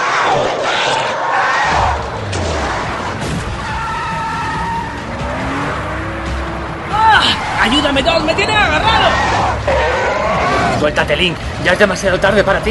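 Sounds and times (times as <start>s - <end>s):
car engine roaring while driven off hard: 0.0s - 12.7s
tires squealing and skidding: 1.1s - 11.1s
speech: 7.9s - 9.9s, 10.8s - 12.7s.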